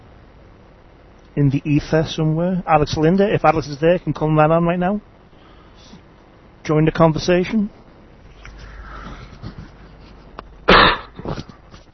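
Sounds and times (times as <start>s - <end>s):
faint hiss: 0.0s - 11.9s
speech: 1.4s - 5.1s, 6.7s - 7.8s
person coughing: 10.7s - 11.6s.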